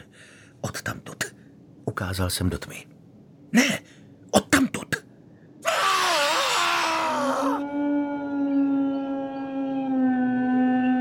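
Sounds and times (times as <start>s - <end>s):
speech: 0.6s - 1.0s, 2.0s - 3.8s
large hound howling at night: 5.6s - 10.9s.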